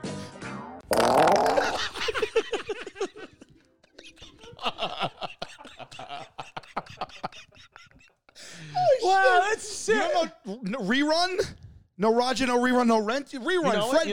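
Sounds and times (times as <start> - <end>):
loud buzzy fart sound effect: 0.8 - 1.8
laughter: 1.5 - 10.2
speech: 10.5 - 14.1.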